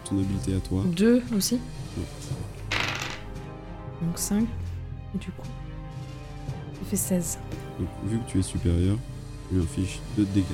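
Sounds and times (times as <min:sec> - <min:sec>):
speech: 0:00.1 - 0:02.6, 0:04.0 - 0:05.6, 0:06.8 - 0:10.5
dice clattering and rattling across a hard table surface: 0:02.7 - 0:03.3.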